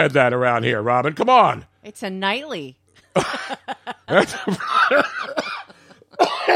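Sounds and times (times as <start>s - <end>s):
speech: 0.0s - 5.6s
laughter: 3.0s - 6.5s
person coughing in harsh bursts: 4.2s - 6.5s.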